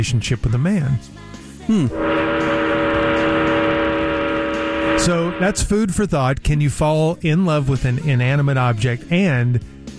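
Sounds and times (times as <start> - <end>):
speech: 0.0 - 2.6, 5.0 - 9.7
train engine revving with a droning hum: 1.7 - 5.9.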